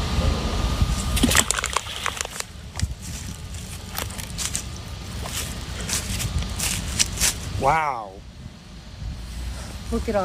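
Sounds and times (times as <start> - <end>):
faint low rumble: 0.0 - 10.2
creek water sloshing and splashing with bubbly pops: 1.0 - 5.6
rock plunking into shallow creek water: 1.2 - 2.9
speech: 7.6 - 8.0, 9.9 - 10.2.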